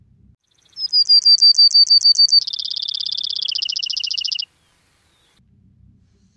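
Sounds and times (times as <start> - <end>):
Brewer's sparrow singing a loud trill song: 0.4 - 5.4.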